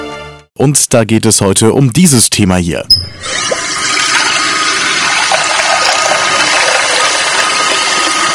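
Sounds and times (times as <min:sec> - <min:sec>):
speech: 0:00.6 - 0:03.8
water running: 0:03.2 - 0:08.3.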